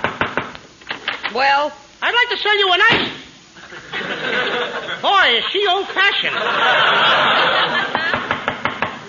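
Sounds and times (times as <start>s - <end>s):
steady hiss: 0.0s - 9.0s
speech: 1.3s - 3.2s, 4.2s - 7.9s
laughter: 3.6s - 9.0s
knocking on a door: 8.1s - 9.0s.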